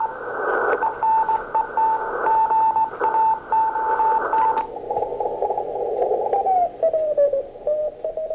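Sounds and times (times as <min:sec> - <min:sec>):
Morse code telegraphy beeps over radio: 0:00.0 - 0:04.7
hissy radio static: 0:00.0 - 0:08.3.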